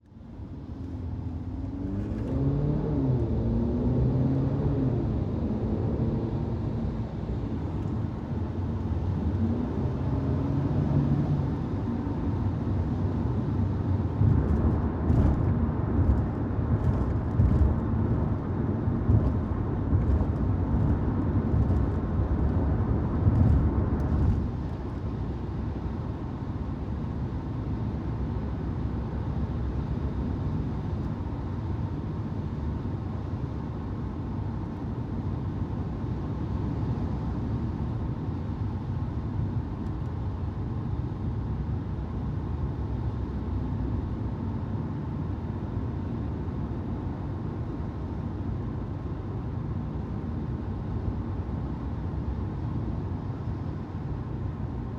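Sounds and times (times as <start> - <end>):
Mercedes CLA interior driving fast on highway: 0.2 - 54.8.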